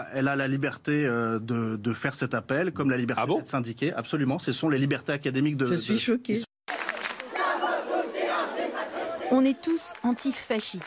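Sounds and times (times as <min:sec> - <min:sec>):
speech: 0:00.0 - 0:06.5, 0:09.3 - 0:10.8
protesting students chanting a rallying cry: 0:06.7 - 0:10.6.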